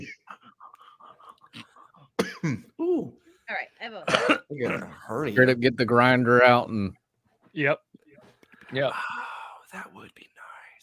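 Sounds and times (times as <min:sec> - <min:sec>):
loud coughing and throat clearing: 0:00.0 - 0:00.6, 0:01.4 - 0:02.8, 0:04.0 - 0:05.1
speech: 0:02.4 - 0:07.0, 0:07.6 - 0:07.8, 0:08.7 - 0:10.3.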